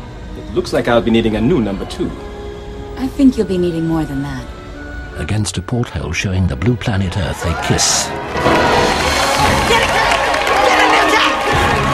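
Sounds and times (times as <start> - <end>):
speech: 0.5 - 2.3, 3.0 - 4.6, 5.2 - 8.6
people cheering: 6.6 - 11.9
excited voices: 6.9 - 8.3, 9.1 - 11.9
crew applauding: 8.9 - 11.9.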